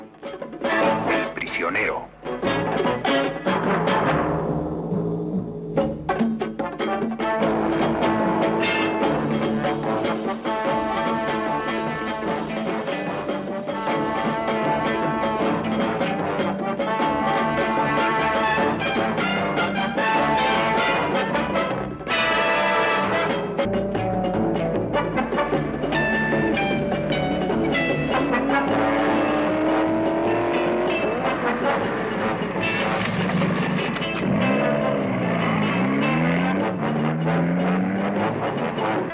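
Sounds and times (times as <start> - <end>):
driving TV theme music with bold brass and strings: 0.0 - 39.1
car engine roaring: 0.9 - 39.1
speech: 1.6 - 3.1
car tires screeching: 7.0 - 23.7, 26.9 - 39.1.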